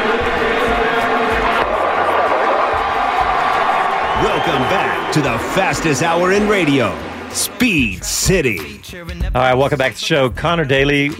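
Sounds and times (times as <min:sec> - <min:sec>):
race crowd screaming and cheering: 0:00.0 - 0:08.4
speech: 0:04.5 - 0:11.1.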